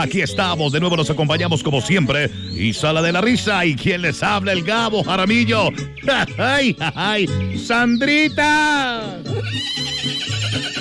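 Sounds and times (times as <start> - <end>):
speech: 0.0 - 10.7
horse neighing: 9.0 - 10.7.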